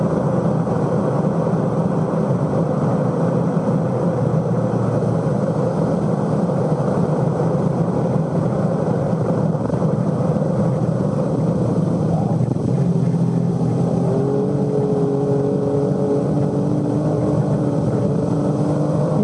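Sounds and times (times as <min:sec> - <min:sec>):
Formula One car engine at maximum revs: 0:00.0 - 0:19.2.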